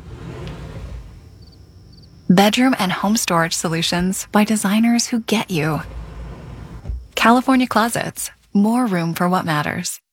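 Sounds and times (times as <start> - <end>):
custom soft-close drawer gliding shut on soft-close runners: 0.0 - 2.3, 3.0 - 4.6, 5.4 - 7.9
speech: 2.3 - 6.0, 7.2 - 10.0.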